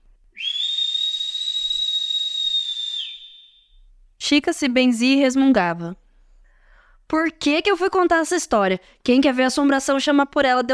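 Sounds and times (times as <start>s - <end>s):
long high eerie whistle with airy hiss: 0.3s - 3.9s
speech: 4.3s - 6.0s, 7.1s - 10.7s.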